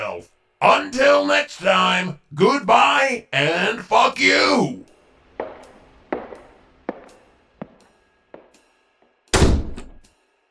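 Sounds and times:
speech: 0:00.2 - 0:04.8
footsteps thudding: 0:05.4 - 0:08.6
door slamming shut with a heavy booming bang: 0:09.4 - 0:10.0.

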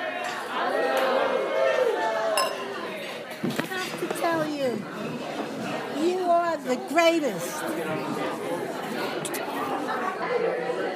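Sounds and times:
lively crowd's overlapping chatter: 0:00.0 - 0:10.9
glasses clinking together in a toast: 0:02.4 - 0:02.7
speech: 0:06.6 - 0:09.4.

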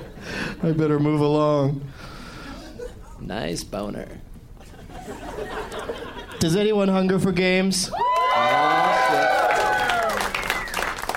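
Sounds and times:
speech: 0:00.6 - 0:02.1, 0:03.2 - 0:04.3, 0:06.4 - 0:08.0
laughter: 0:04.6 - 0:06.8
live audience cheering and whooping: 0:07.9 - 0:11.1
steady applause from a live audience: 0:08.0 - 0:11.1.

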